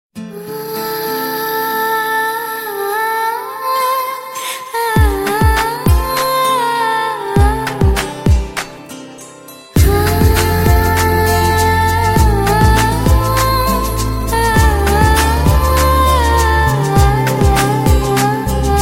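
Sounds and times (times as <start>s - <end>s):
woman singing a raag: 0.2s - 8.8s, 9.8s - 18.8s.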